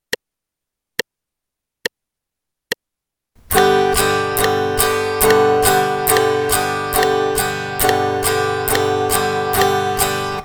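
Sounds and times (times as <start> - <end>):
guitar strumming a G chord in eighth notes: 3.4 - 10.4.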